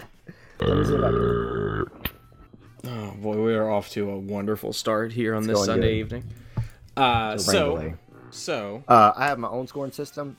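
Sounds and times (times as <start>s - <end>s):
long loud rumbling burp: 0.6s - 2.1s, 5.7s - 8.4s
short throaty vocal noises: 0.6s - 2.1s, 5.5s - 8.5s
speech: 0.8s - 1.5s, 3.8s - 6.4s, 7.0s - 10.3s.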